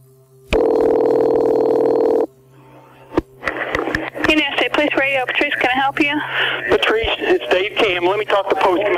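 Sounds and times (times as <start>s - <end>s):
bursts of telephone line static: 0.0s - 8.9s
loud steady buzzing telephone dial tone: 0.5s - 2.3s
speech: 5.0s - 8.9s.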